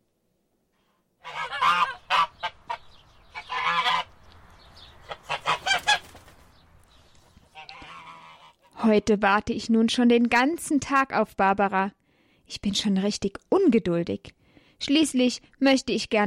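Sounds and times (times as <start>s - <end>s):
goose honking and cackling: 1.2s - 4.2s, 4.9s - 6.2s, 7.4s - 8.8s
speech: 8.8s - 16.2s.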